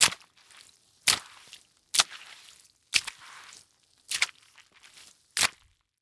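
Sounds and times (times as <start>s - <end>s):
wet mop sloshing water on concrete floor: 1.1s - 5.6s.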